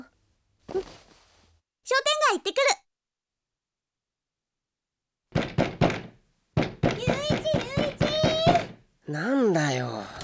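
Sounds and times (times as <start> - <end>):
speech: 1.9 - 2.8, 9.1 - 10.0
knocking on a door: 5.3 - 8.9.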